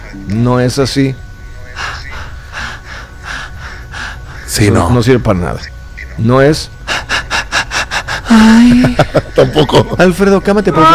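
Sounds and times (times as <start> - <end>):
speech: 0.1 - 1.2, 4.5 - 6.8, 8.3 - 10.9
person demonstrating a breathing technique: 1.7 - 4.6, 6.8 - 9.1
laughter: 8.2 - 10.9.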